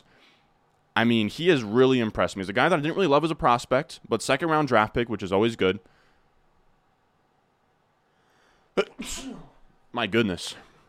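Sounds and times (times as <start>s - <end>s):
speech: 1.0s - 6.0s, 8.8s - 10.7s
person sneezing loudly: 8.8s - 9.7s.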